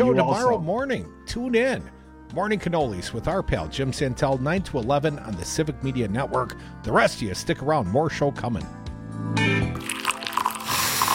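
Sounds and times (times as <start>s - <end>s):
speech: 0.2s - 9.9s
coffee poured into a cup: 9.8s - 11.1s.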